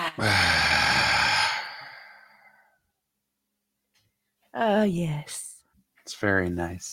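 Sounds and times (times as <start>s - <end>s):
deep cleansing breath: 0.2s - 2.8s
speech: 4.8s - 5.4s, 6.2s - 6.9s.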